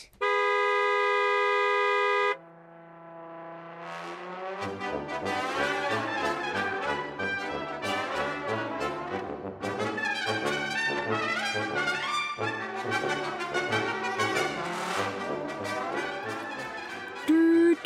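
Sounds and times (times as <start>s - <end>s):
long loud car horn blast: 0.1s - 4.2s
speech: 4.6s - 5.7s
upbeat music: 4.6s - 17.8s.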